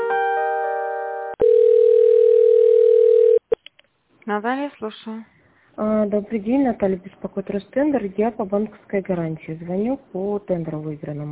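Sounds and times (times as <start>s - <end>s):
telephone line tones during call transfer: 1.3s - 3.4s
speech: 4.3s - 11.3s.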